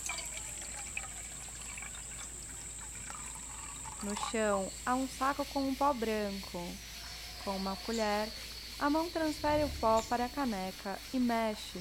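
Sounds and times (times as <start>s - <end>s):
water pouring from a bottle into a metal mug: 0.0s - 4.8s
speech: 4.0s - 11.7s.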